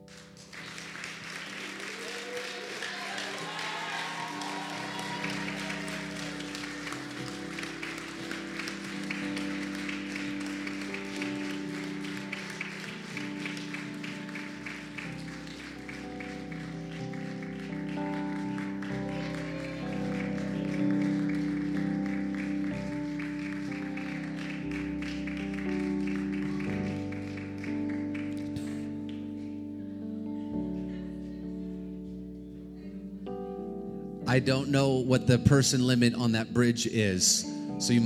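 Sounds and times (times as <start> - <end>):
large crowd clapping and cheering: 0.0 - 29.8
steady musical tone: 0.0 - 38.0
whoops: 1.2 - 7.5, 18.2 - 22.6
speech: 34.3 - 38.0.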